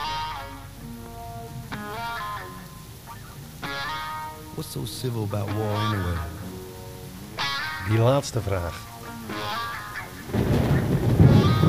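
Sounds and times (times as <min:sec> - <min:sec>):
deep rolling rumble of thunder: 0:00.0 - 0:11.6
steady rain hiss: 0:00.0 - 0:11.6
sustained musical tone in a song: 0:00.0 - 0:11.6
speech: 0:04.6 - 0:06.4, 0:07.9 - 0:09.5.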